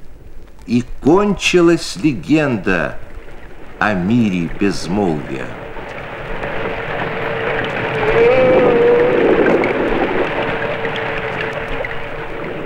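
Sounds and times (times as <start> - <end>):
speech: 0.7 - 3.1, 3.8 - 5.6
underwater crackling hiss recorded by a hydrophone: 0.7 - 12.6
underwater wavering tone: 6.7 - 12.6.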